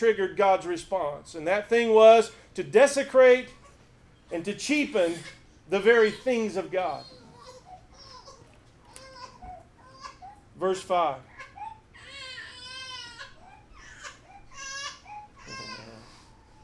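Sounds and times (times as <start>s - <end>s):
speech: 0.0s - 3.6s, 4.3s - 7.2s, 10.6s - 11.3s
small child crying with wavering high-pitched wails and whimpers: 7.1s - 10.5s, 11.3s - 16.6s.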